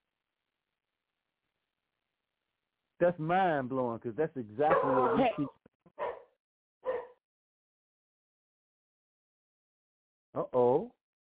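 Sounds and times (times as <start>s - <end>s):
speech: 3.0s - 5.6s
young dog barking: 4.7s - 5.4s, 6.0s - 6.2s, 6.8s - 7.2s.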